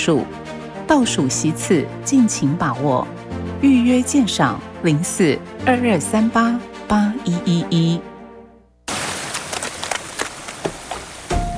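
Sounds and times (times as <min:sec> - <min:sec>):
speech: 0:00.0 - 0:08.1
sudden heavy rain shower downpour: 0:08.9 - 0:11.5.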